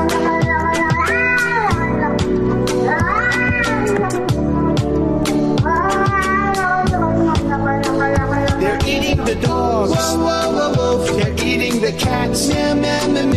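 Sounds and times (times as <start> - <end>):
music with a punchy beat: 0.0 - 13.3
cat meowing: 0.7 - 1.8, 2.9 - 7.8.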